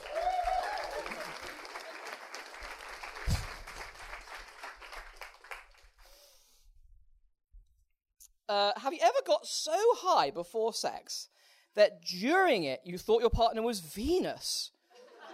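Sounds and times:
audience applause: 0.0 - 6.0
low thump: 3.2 - 3.6
speech: 8.5 - 14.8.

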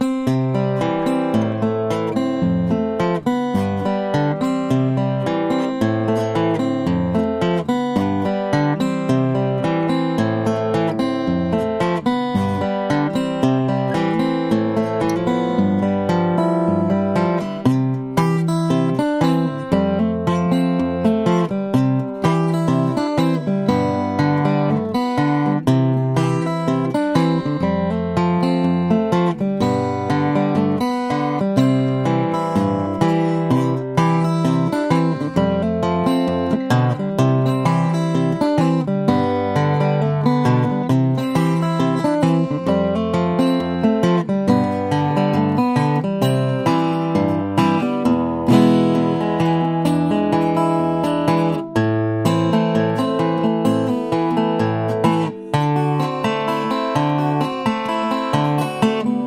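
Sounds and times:
slow guitar playing: 0.0 - 59.2.

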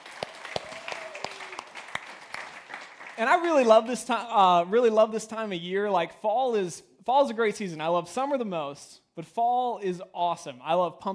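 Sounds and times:
church audience applauding and cheering during a service: 0.0 - 3.9
speech: 3.2 - 11.1.

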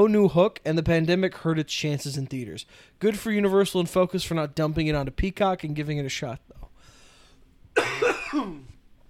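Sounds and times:
speech: 0.0 - 6.6, 7.8 - 8.7
harsh raspy cough with throaty rattle: 7.8 - 8.8.

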